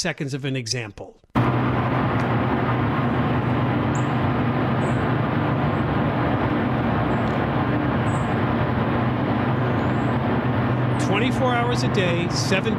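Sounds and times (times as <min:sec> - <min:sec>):
speech: 0:00.0 - 0:01.6, 0:11.2 - 0:12.7
industrial cooling fans roaring at a cryptocurrency data center: 0:01.4 - 0:12.7
low hum: 0:01.4 - 0:12.7.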